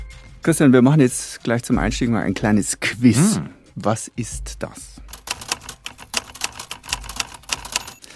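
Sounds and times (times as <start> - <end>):
speech: 0.4 - 5.0
old mechanical typewriter typing: 5.1 - 8.1.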